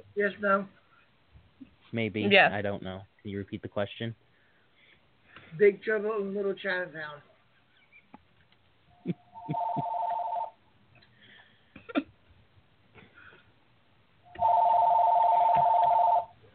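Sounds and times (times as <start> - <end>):
speech: 0.2 - 0.8, 1.6 - 4.3, 5.5 - 7.3, 9.0 - 10.0
telephone ringing with electronic trill: 9.2 - 10.6, 14.3 - 16.4.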